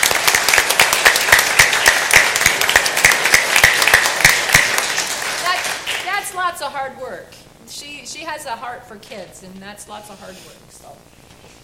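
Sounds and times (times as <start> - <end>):
audience applause: 0.0 - 6.1
speech: 6.6 - 11.2.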